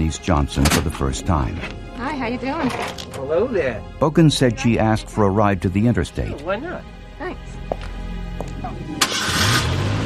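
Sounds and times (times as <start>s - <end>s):
speech: 0.1s - 7.5s
truck engine starting: 8.9s - 10.0s.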